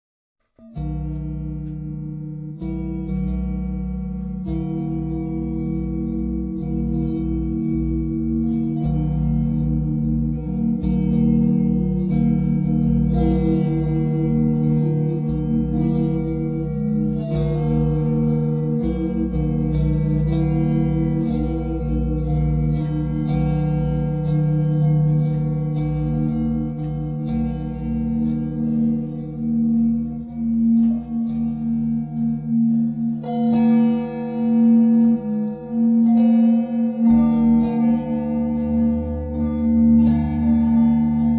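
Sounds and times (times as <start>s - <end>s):
bells in 10edo tuning: 0.6s - 41.3s.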